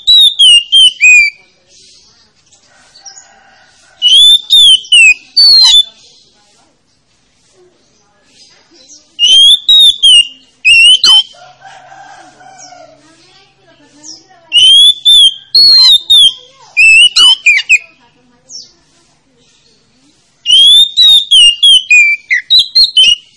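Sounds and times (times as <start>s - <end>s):
Oriental magpie-robin song of bright whistled phrases: 0.0s - 3.3s, 4.0s - 6.3s, 8.3s - 11.4s, 14.0s - 18.7s, 20.4s - 23.3s
faint chatter with quieter warbling: 0.0s - 23.3s.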